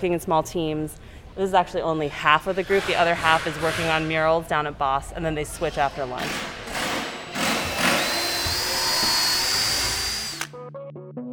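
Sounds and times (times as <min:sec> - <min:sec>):
speech: 0:00.0 - 0:06.6
power drills and drivers whirring in a workshop: 0:06.2 - 0:10.5.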